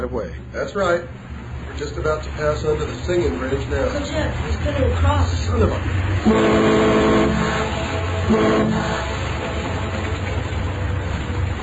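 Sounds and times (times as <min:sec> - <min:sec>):
speech: 0:00.0 - 0:07.0, 0:08.3 - 0:09.1
steady engine rumble: 0:00.0 - 0:11.6
boat horn blasts: 0:06.2 - 0:11.5.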